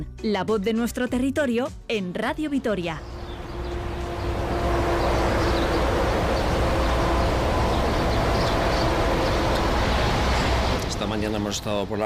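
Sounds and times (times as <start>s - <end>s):
speech: 0.0s - 3.2s, 11.1s - 12.0s
road traffic roar on the A68 motorway at Pobes: 2.5s - 12.0s
birds fluttering: 3.0s - 11.8s.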